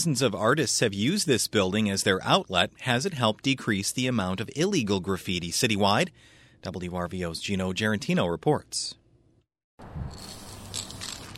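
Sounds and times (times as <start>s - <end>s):
speech: 0.0s - 9.0s
spray paint cans hissing: 10.0s - 11.3s.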